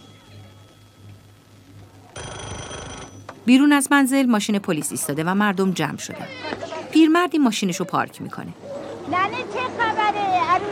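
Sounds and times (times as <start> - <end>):
telephone ringing on a desk: 0.0 - 4.2
speech: 3.5 - 10.7.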